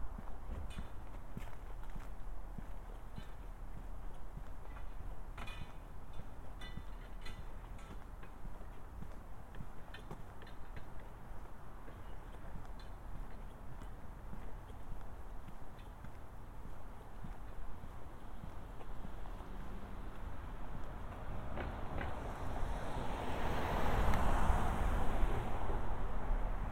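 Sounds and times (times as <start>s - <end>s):
light tapping footsteps: 0.0s - 22.6s
low rumble of the street: 0.0s - 26.7s
vehicle approaching and passing with a whooshing noise: 18.6s - 26.7s.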